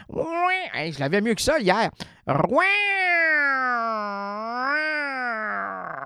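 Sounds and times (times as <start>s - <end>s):
human voice imitating a kitten's meow: 0.2s - 0.8s, 2.4s - 6.0s
speech: 0.2s - 4.9s.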